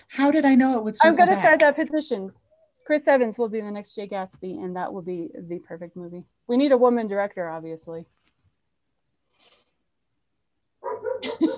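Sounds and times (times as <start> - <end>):
speech: 0.2 - 8.2
dogs barking and yipping: 10.8 - 11.5.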